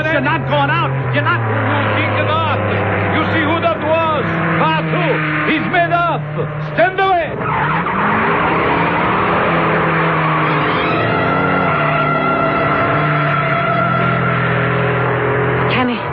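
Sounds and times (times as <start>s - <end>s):
race car engine roaring around a track curve: 0.0s - 16.1s
race car tires squealing on a track curve: 0.0s - 16.1s
speech: 0.1s - 2.4s.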